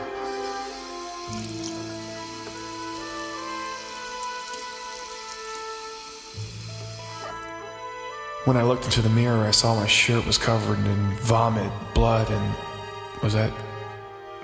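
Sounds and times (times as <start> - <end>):
water splashing from a running bathroom sink: 0.2 - 7.3
speech: 1.3 - 1.7, 8.4 - 13.7.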